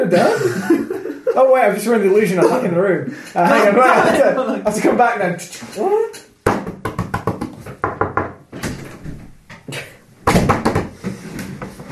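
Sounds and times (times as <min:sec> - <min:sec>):
laughter: 0:00.0 - 0:04.6
speech: 0:00.1 - 0:00.8, 0:01.4 - 0:06.2
wooden door opening and closing: 0:07.7 - 0:11.9.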